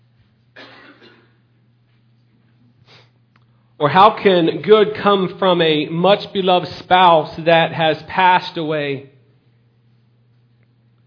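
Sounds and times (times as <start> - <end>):
steady low electrical hum: 0.0 - 11.0
harsh coughs: 0.6 - 1.5
speech: 3.8 - 9.1.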